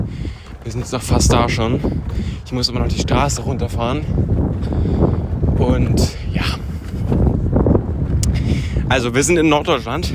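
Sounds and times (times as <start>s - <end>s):
strong wind buffeting the microphone outdoors in northern Germany: 0.0s - 10.1s
speech: 0.6s - 7.2s, 8.9s - 10.1s.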